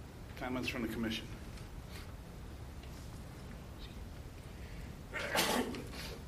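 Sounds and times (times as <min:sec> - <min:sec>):
quiet room hum: 0:00.0 - 0:06.2
speech: 0:00.4 - 0:01.4
sneeze during a commission meeting: 0:05.1 - 0:06.2.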